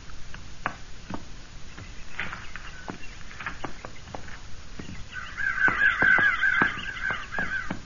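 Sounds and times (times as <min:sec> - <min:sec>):
rustling: 0:00.0 - 0:07.8
several crows cawing in harsh calls: 0:04.8 - 0:07.8.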